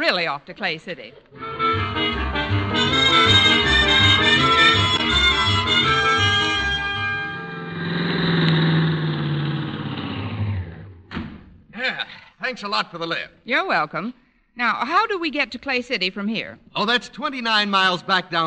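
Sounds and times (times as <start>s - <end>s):
speech: 0.1s - 3.7s, 12.5s - 18.4s
car engine cranking, revving and idling: 1.4s - 11.6s.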